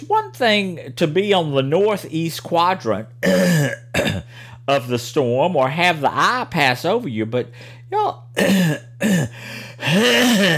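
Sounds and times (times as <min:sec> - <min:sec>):
speech: 0:00.0 - 0:10.5
hacking cough: 0:03.2 - 0:04.4, 0:08.4 - 0:10.5
rough throat clearing: 0:03.2 - 0:04.4, 0:08.4 - 0:10.5.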